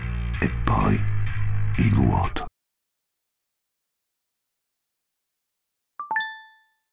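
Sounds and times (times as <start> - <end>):
speech: 0.4 - 1.1, 1.8 - 2.5
PC notification chime: 6.0 - 6.8.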